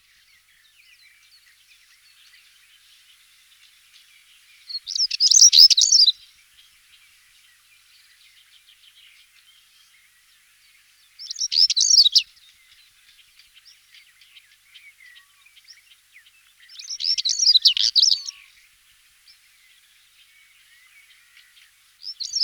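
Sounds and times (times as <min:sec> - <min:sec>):
stonechat songbird singing: 0:04.7 - 0:06.1, 0:11.2 - 0:12.2, 0:16.7 - 0:18.3.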